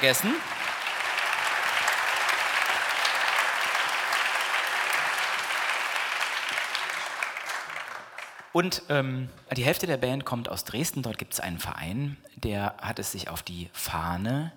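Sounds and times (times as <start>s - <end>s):
speech: 0.0s - 0.6s, 8.5s - 14.5s
concert audience applause for the lighting crew: 0.0s - 8.6s.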